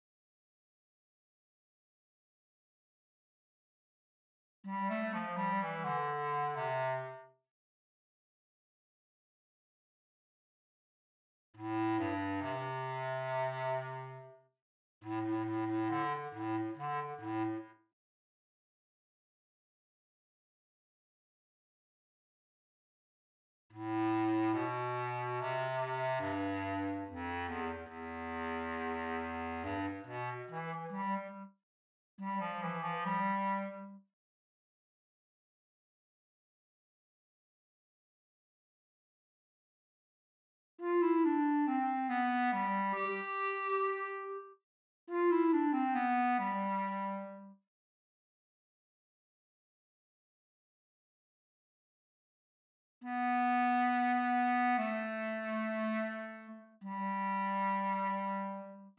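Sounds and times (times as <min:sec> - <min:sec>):
bass clarinet: 0:04.7 - 0:07.3, 0:11.6 - 0:14.4, 0:15.0 - 0:17.8, 0:23.8 - 0:31.6, 0:32.2 - 0:34.0, 0:40.8 - 0:47.6, 0:53.0 - 0:58.9.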